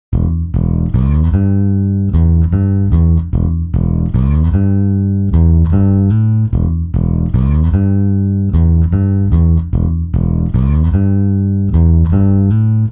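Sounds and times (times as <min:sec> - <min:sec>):
time-stretched bass: 0:00.1 - 0:12.9.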